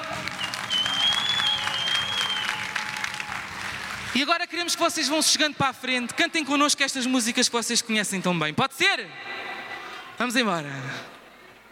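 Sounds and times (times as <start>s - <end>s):
audience applause: 0.0s - 4.3s
speech: 4.2s - 9.3s, 10.2s - 11.2s.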